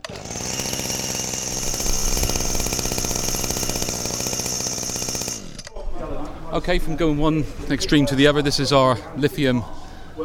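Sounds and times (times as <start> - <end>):
small 25cc two-stroke petrol engine running: 0.0 - 5.7
speech: 6.6 - 9.8.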